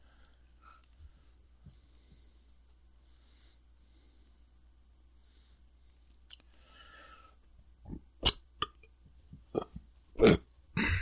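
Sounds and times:
short belch: 9.5s - 10.9s.

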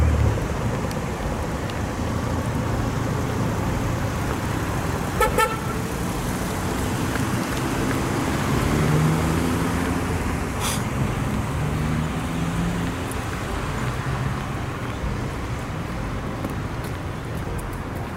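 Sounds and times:
steady road traffic with vehicles passing: 0.0s - 18.1s
car horn honking: 5.2s - 6.0s.

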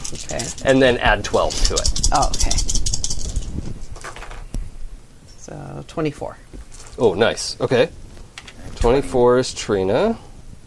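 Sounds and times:
speech: 0.1s - 2.8s, 5.5s - 8.0s, 8.7s - 10.3s
plastic dice clattering across a hard surface: 1.5s - 4.4s.

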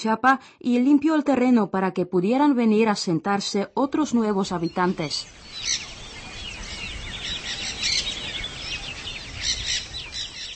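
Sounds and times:
speech: 0.0s - 5.9s
many birds chirping and singing in open countryside: 4.4s - 10.5s.

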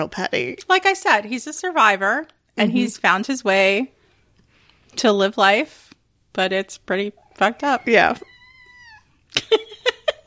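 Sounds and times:
speech: 0.0s - 4.0s, 4.9s - 8.3s
cat meowing with short chirpy meows: 7.2s - 9.2s.

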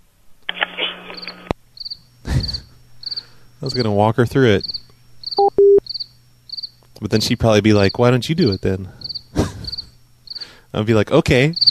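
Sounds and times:
voice imitating cricket chirps: 0.6s - 10.7s, 11.3s - 11.6s
breathy hissing noise: 2.2s - 3.7s, 8.8s - 10.8s
speech: 3.6s - 4.9s, 7.0s - 9.0s, 10.7s - 11.6s.

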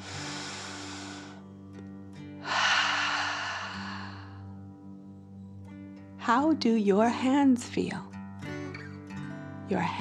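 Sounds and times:
deep slow breathing in and out as part of a relaxation exercise: 0.0s - 1.6s, 2.4s - 4.6s
speech: 6.3s - 8.1s, 9.7s - 9.9s.

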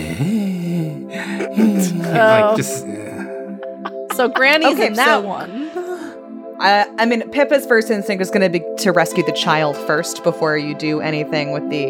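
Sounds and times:
voice imitating an old person wheezing: 0.0s - 4.1s
laughter: 1.1s - 6.1s
speech: 1.5s - 3.1s, 4.2s - 5.6s, 6.6s - 11.8s.

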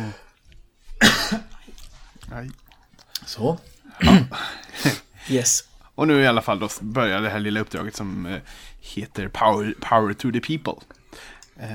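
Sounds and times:
person coughing with rough throat-clearing tail: 1.0s - 1.7s, 4.0s - 5.1s
speech: 2.3s - 2.6s, 3.3s - 11.7s.

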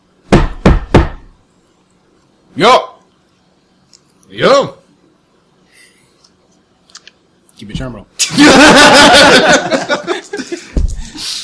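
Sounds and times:
firm knocking on a door: 0.3s - 1.3s
speech: 2.6s - 2.9s, 4.4s - 4.8s, 7.7s - 10.0s
laughter: 8.2s - 11.3s.

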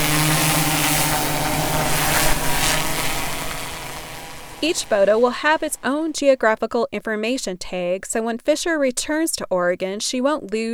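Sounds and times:
drone flying, propellers buzzing: 0.0s - 6.2s
speech: 4.6s - 10.7s.

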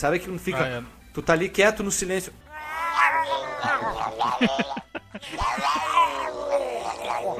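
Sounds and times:
speech: 0.0s - 2.5s, 3.7s - 7.3s
voice imitating a growling, rumbling stomach: 2.5s - 7.3s
laughter: 3.4s - 6.3s.

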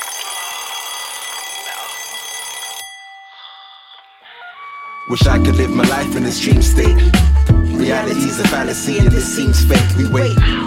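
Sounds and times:
alarm clock bell ringing: 0.0s - 4.4s
speech: 5.1s - 10.6s.

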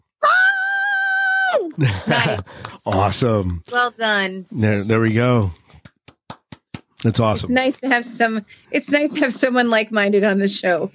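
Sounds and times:
person screaming a word: 0.2s - 2.8s
speech: 1.5s - 5.6s, 7.0s - 10.9s
laughter: 1.8s - 3.6s.

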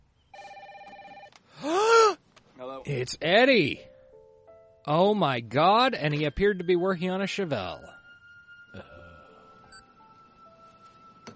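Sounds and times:
telephone ringing with an electronic trill: 0.4s - 1.4s
speech: 2.8s - 3.9s, 4.8s - 8.0s, 8.7s - 8.9s.

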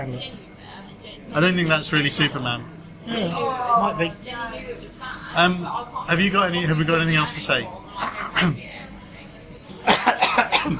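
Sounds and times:
speech: 0.0s - 0.5s, 1.1s - 7.8s, 8.4s - 8.9s
harsh coughing: 9.8s - 10.7s.

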